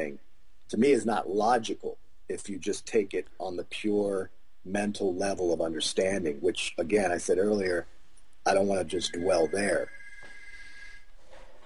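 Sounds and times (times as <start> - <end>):
speech: 0.0 - 10.0
faint telephone ring with a high electronic tone: 9.0 - 11.1.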